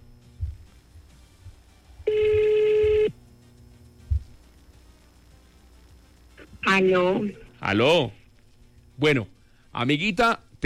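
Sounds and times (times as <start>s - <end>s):
soft low thumps: 0.3s - 1.6s, 4.0s - 4.4s
cell phone ringing with a steady electronic tone: 2.1s - 3.2s
speech: 6.8s - 8.2s, 9.0s - 10.4s.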